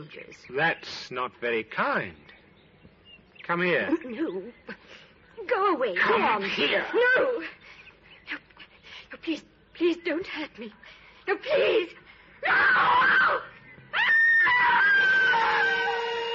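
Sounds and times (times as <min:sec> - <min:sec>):
speech: 0:00.0 - 0:02.4, 0:03.5 - 0:08.4, 0:09.1 - 0:13.5
woman screaming in high piercing bursts: 0:11.4 - 0:16.2.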